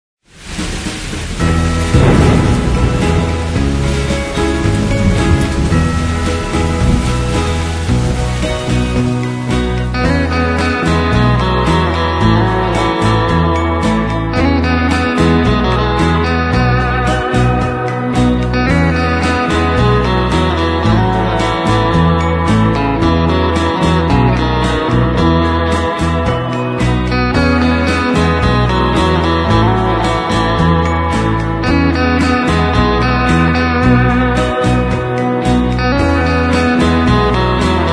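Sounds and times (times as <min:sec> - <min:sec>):
guitar instrumental: 0:00.8 - 0:37.9.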